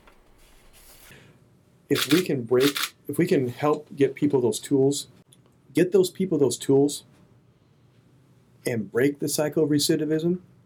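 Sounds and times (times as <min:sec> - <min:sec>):
speech: 0:01.9 - 0:05.2, 0:05.8 - 0:07.1, 0:08.6 - 0:10.5
camera shutter clicking as a photographer takes photos: 0:02.0 - 0:03.0.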